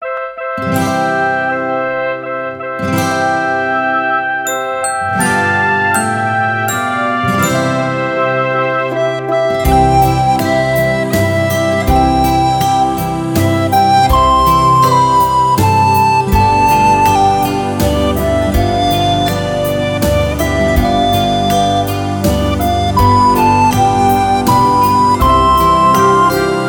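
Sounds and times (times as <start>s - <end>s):
lullaby melody played on a recorder: 0.0s - 26.6s.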